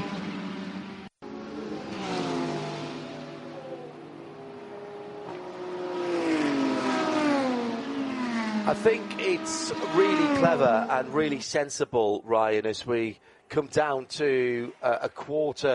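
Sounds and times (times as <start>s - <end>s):
BMW race car engine accelerating out of pits: 0.0s - 11.4s
speech: 8.7s - 15.7s.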